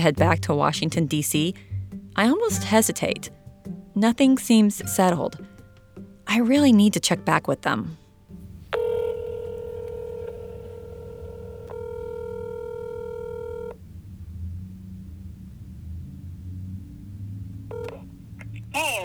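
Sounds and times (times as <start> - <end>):
speech: 0.0 - 3.4, 4.0 - 5.5, 6.3 - 8.0
low rumble: 8.3 - 19.0
telephone dialing tones, long steady electronic beeps: 8.4 - 19.0.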